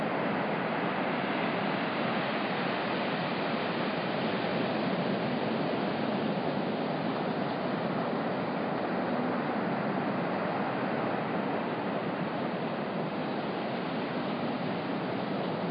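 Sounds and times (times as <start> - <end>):
ocean surf on a beach at night: 0.0 - 15.7.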